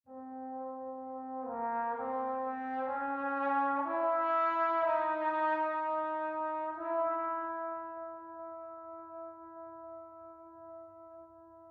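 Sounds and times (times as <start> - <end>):
distant trombone solo with reverb: 0.1 - 11.4.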